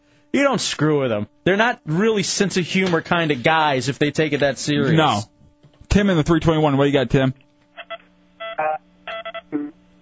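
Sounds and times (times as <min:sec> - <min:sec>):
steady telephone line hum: 0:00.0 - 0:10.0
speech: 0:00.3 - 0:05.3, 0:05.9 - 0:07.4
garbled tinny tones on a bad telephone line: 0:07.8 - 0:10.0.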